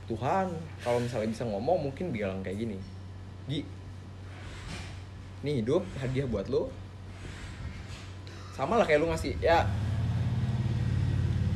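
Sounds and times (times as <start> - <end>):
speech: 0.1 - 3.8, 5.4 - 6.8, 8.6 - 9.8
passing motorcycle engine rumbling: 9.2 - 11.5.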